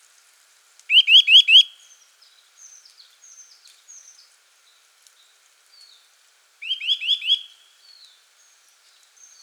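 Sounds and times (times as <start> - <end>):
Eurasian nuthatch sharp rising whistled calls, Sitta europaea: 6.6 - 7.5.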